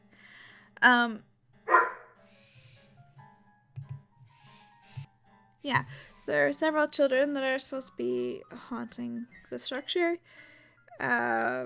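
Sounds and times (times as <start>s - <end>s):
speech: 0.8s - 1.3s, 5.6s - 11.6s
dog barking: 1.7s - 2.2s.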